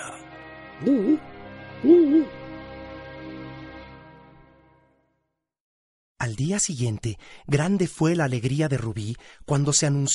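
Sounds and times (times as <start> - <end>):
owl hooting: 0.8 - 2.4
speech: 0.8 - 2.4, 6.3 - 10.1.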